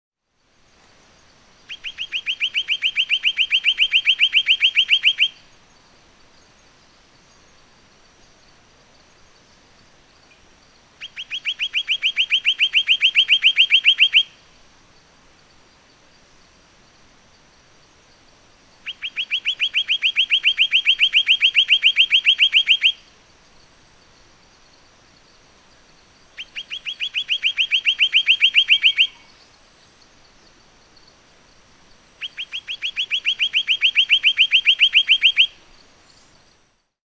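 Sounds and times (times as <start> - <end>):
Pied Monarch Arses kaupi calling: 1.6 - 5.6, 10.2 - 14.4, 18.8 - 23.2, 25.8 - 36.5.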